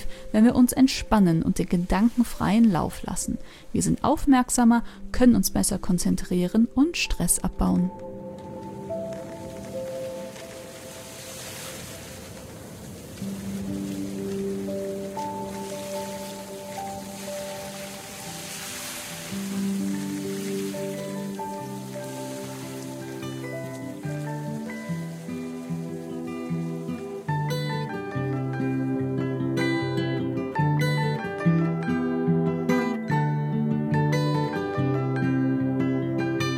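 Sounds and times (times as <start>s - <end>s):
soft melodic music of sustained shifting tones: 0.0s - 36.5s
speech: 0.3s - 8.1s
rain pattering on a surface: 8.0s - 28.1s.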